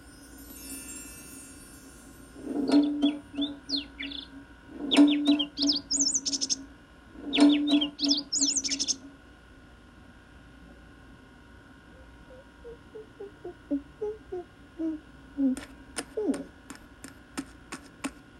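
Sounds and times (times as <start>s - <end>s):
low steady hum: 0.0s - 18.3s
tropical bird calling with warbling chirps and whistles: 2.6s - 9.1s, 12.0s - 16.5s.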